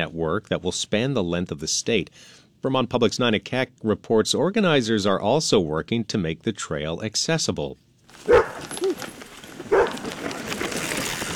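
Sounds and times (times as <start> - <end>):
speech: 0.0 - 8.6
steady outdoor hiss: 0.0 - 10.7
service dog barking: 8.2 - 9.0, 9.7 - 10.1.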